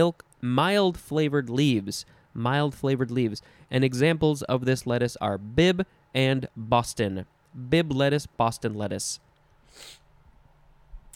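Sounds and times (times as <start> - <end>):
speech: 0.0 - 9.2
short breathy nasal sniff: 9.6 - 10.1.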